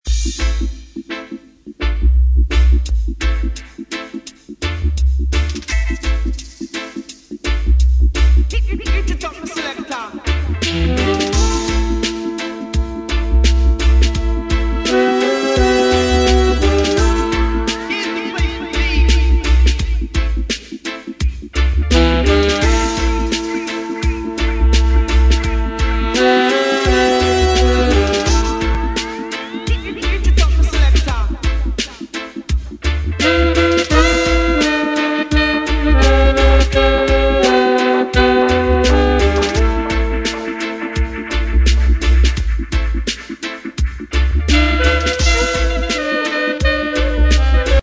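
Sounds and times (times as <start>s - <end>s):
drum song: 0.0s - 1.3s, 2.8s - 47.8s.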